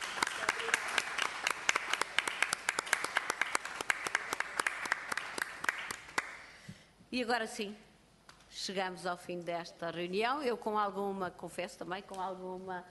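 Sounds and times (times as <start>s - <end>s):
small audience applauding at a meeting: 0.0s - 6.4s
speech: 7.1s - 7.9s, 8.5s - 12.8s.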